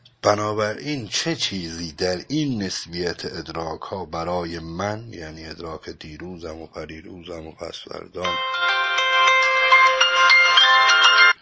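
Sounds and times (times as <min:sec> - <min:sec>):
speech: 0:00.2 - 0:08.7
mobile phone ringtone with melodic chime: 0:08.2 - 0:11.4.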